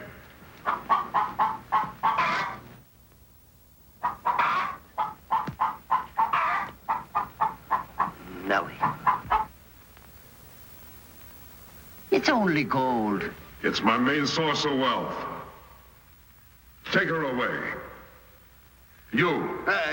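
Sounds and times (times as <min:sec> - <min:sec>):
hen cackling while laying an egg: 0:00.0 - 0:02.8, 0:04.0 - 0:09.6
speech: 0:12.2 - 0:15.3, 0:16.9 - 0:17.8, 0:19.2 - 0:19.9.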